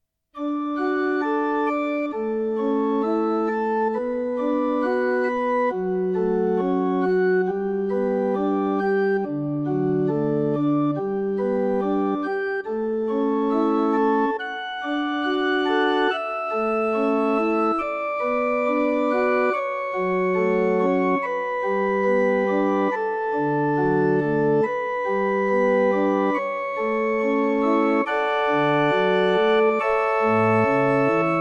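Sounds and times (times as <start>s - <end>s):
organ playing a baroque piece in D major: 0.4s - 31.4s.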